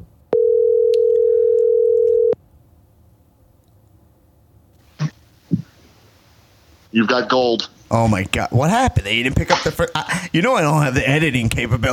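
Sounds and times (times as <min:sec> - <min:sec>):
telephone call ringing on a phone line: 0:00.4 - 0:02.4
speech: 0:07.0 - 0:11.9.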